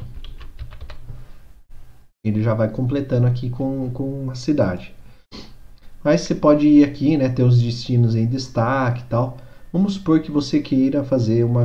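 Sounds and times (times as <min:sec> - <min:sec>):
typing on a computer keyboard: 0:00.0 - 0:01.1
speech: 0:02.2 - 0:05.0, 0:06.0 - 0:11.6.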